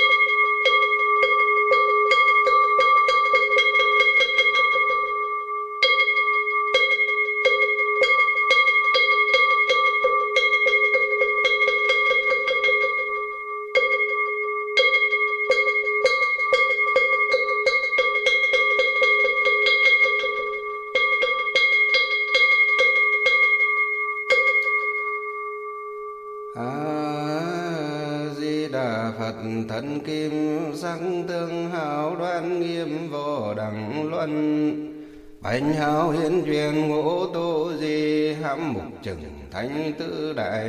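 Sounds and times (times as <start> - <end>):
temple bell ringing: 0.0 - 38.9
person chanting: 26.6 - 40.6
speech: 39.0 - 40.6.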